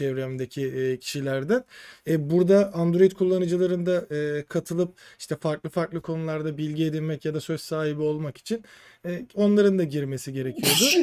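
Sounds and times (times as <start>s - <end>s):
speech: 0.0s - 11.0s
man sneezing loudly: 10.6s - 11.0s.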